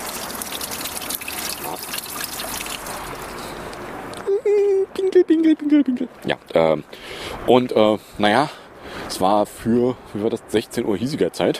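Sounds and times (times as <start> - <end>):
water trickling and splashing: 0.0 - 4.1
speech: 5.4 - 11.5.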